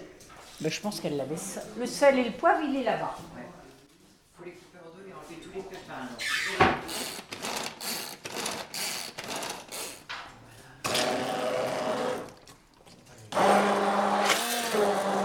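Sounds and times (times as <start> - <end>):
speech: 0.6 - 3.5, 5.3 - 7.2
kitchen blender puréeing halved seeded produce with salt and pepper: 6.9 - 10.0, 10.8 - 12.4, 13.3 - 15.2.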